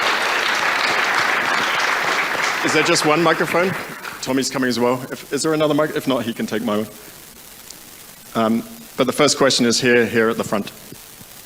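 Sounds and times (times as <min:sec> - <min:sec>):
audience applause at a company event: 0:00.0 - 0:05.0
speech: 0:02.6 - 0:07.2, 0:08.4 - 0:10.8.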